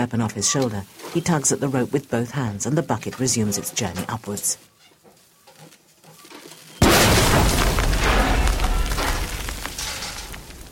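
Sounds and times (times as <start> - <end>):
speech: 0.0 - 4.7
explosion in a mine shaft: 6.8 - 10.6.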